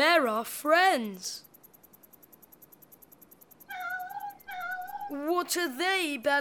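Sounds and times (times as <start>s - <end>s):
speech: 0.0s - 1.5s, 5.1s - 6.3s
cat meowing: 3.7s - 5.2s.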